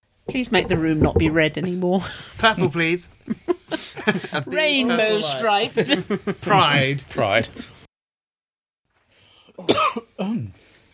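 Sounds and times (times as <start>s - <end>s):
speech: 0.3s - 7.8s, 9.6s - 10.7s
laughter: 2.4s - 7.0s
forceful coughs: 9.6s - 10.5s.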